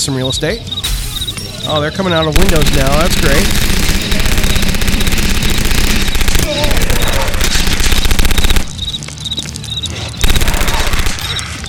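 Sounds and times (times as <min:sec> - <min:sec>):
speech: 0:00.0 - 0:04.4
video game automatic machine gun firing: 0:02.4 - 0:09.0, 0:10.2 - 0:11.6.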